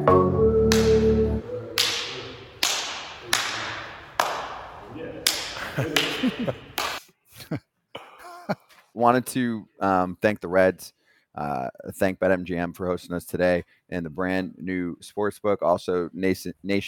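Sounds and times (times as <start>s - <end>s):
hand slaps like high fives: 0.7s - 7.0s
laughter: 5.4s - 7.6s, 8.2s - 8.7s
speech: 6.3s - 6.7s, 9.0s - 16.8s.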